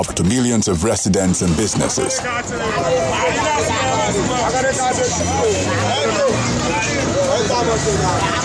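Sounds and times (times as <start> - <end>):
speech: 0.0 - 8.4
traffic: 0.0 - 8.4
conductors and crowd shouting and calling out at a busy bus stop: 2.1 - 8.4.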